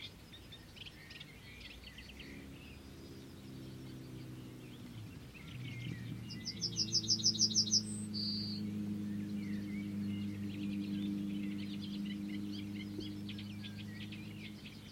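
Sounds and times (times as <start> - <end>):
birds chirping and trilling: 0.0 - 14.9
low steady engine-like hum: 0.0 - 14.9.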